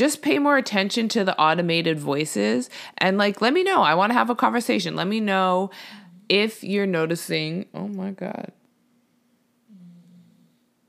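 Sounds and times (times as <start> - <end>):
speech: 0.0 - 8.6
quiet hum: 0.0 - 10.8
sleeping pet snoring: 9.7 - 10.7.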